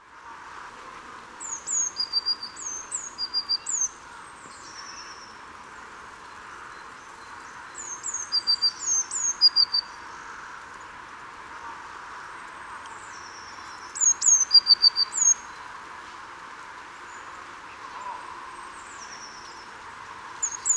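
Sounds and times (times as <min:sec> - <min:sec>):
faint background noise: 0:00.0 - 0:20.7
Eurasian blue tit Cyanistes caeruleus calling: 0:01.4 - 0:04.0, 0:07.8 - 0:09.9, 0:14.0 - 0:15.4, 0:20.4 - 0:20.7.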